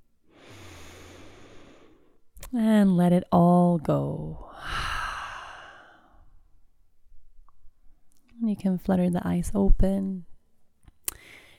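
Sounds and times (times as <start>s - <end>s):
slow deep inhalation during a guided meditation: 0.3s - 2.2s, 4.5s - 6.4s, 11.2s - 11.5s
speech: 2.5s - 4.5s, 8.6s - 10.3s.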